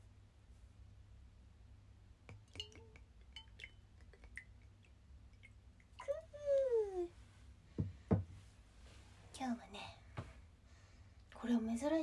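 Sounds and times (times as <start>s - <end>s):
low steady hum: 0.0s - 12.0s
small sake cups clinking in a toast of Japanese sake in a soundproof room: 2.3s - 5.6s
speech: 11.5s - 12.0s.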